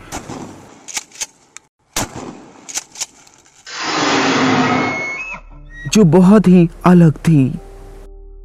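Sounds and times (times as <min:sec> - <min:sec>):
gunshots fired at a creature: 0:00.0 - 0:04.9
speech: 0:06.0 - 0:07.6.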